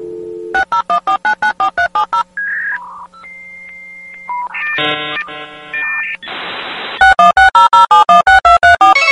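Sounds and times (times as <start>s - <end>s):
telephone keypad tones of a number being dialed: 0.4s - 6.4s, 7.0s - 9.0s.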